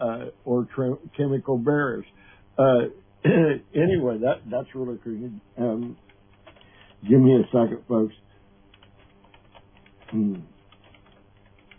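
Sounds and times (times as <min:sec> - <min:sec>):
speech: 0:00.0 - 0:06.0, 0:07.0 - 0:08.2, 0:10.1 - 0:10.5
typing on a computer keyboard: 0:05.7 - 0:07.0, 0:08.7 - 0:11.7.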